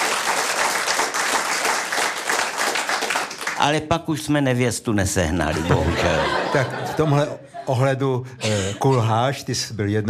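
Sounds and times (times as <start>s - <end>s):
audience applauding: 0.0s - 3.8s
speech: 3.6s - 10.0s
laughter: 5.3s - 9.1s.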